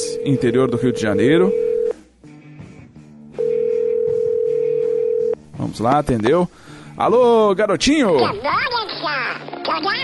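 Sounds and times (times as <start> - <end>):
telephone dial tone for a long-distance call: 0.1 - 1.9, 3.4 - 5.4
speech: 0.2 - 1.7, 5.8 - 10.0.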